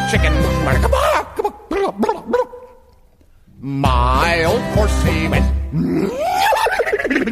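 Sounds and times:
speech: 0.1s - 1.3s, 3.6s - 7.3s
person imitating a dog barking while singing a children's farm-animal song: 0.7s - 2.9s, 5.7s - 7.3s.

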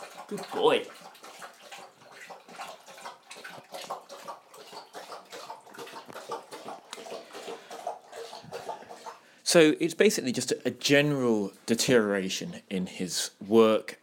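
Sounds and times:
dog lapping water from a bowl: 0.0s - 9.5s
speech: 0.3s - 1.2s, 9.5s - 14.0s.

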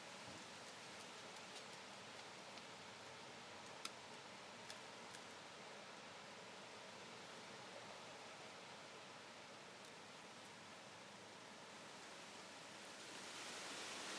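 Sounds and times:
strong wind gust tearing through leafy trees: 0.0s - 14.1s
faint scattered ticks: 0.6s - 2.8s, 3.6s - 5.4s.

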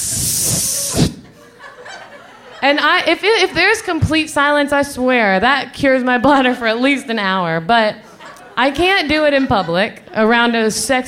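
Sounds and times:
person imitating a hiss with the voice: 0.0s - 1.2s
short trailing breath: 0.0s - 1.3s
laughter: 0.8s - 2.8s, 8.0s - 10.5s
speech: 2.6s - 11.0s.

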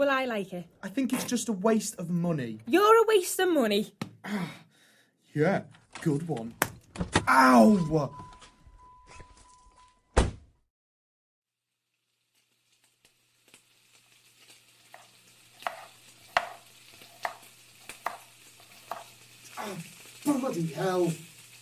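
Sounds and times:
speech: 0.0s - 4.6s, 5.3s - 8.3s, 19.6s - 21.3s
knife chopping vegetables for fajitas on a cutting board: 15.6s - 19.1s.

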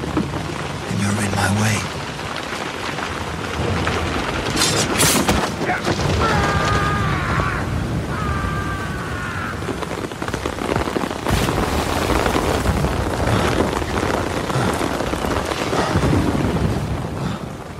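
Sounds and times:
heavy rain pouring: 0.0s - 17.7s
speech: 1.4s - 2.0s
low rolling thunder: 1.6s - 17.7s
sharp thunder crack: 3.3s - 17.4s.

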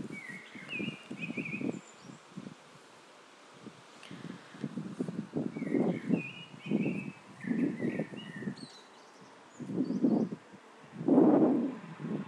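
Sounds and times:
bird singing in a garden: 0.0s - 2.3s, 5.4s - 10.4s
low wind noise: 0.0s - 12.2s.

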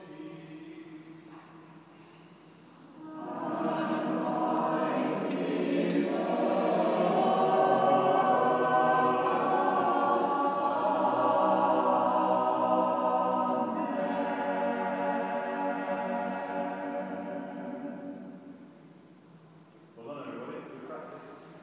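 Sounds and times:
choir tuning up in Derby Cathedral: 2.8s - 19.0s.

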